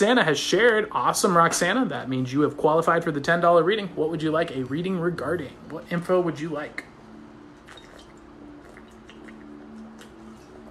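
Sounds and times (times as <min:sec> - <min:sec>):
speech: 0:00.0 - 0:06.9
steady low hum: 0:00.0 - 0:10.7
person drinking water with sips and gulping: 0:07.6 - 0:10.7.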